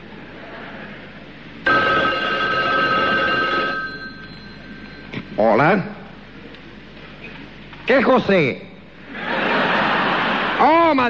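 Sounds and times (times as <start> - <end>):
laughter: 0.2 - 1.3, 9.0 - 10.9
old telephone bell ringing: 1.7 - 5.2
speech: 5.4 - 6.0, 7.9 - 8.7, 10.6 - 11.0.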